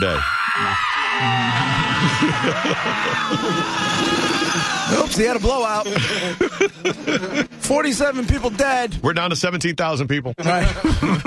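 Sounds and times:
large crowd of fans screaming and whooping: 0.0 - 6.5
speech: 0.0 - 11.2
laughter: 1.2 - 5.1, 5.8 - 7.6, 10.4 - 11.2.

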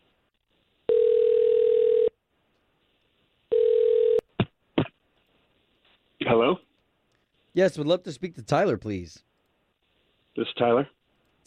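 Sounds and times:
telephone dial tone: 0.9 - 2.2, 3.5 - 4.2
speech: 7.6 - 9.3, 10.4 - 11.4.

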